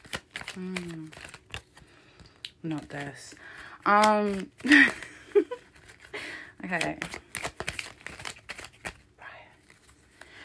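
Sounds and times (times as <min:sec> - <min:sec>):
playing cards shuffling: 0:00.0 - 0:10.4
speech: 0:00.6 - 0:01.3, 0:02.6 - 0:05.1, 0:06.7 - 0:07.2.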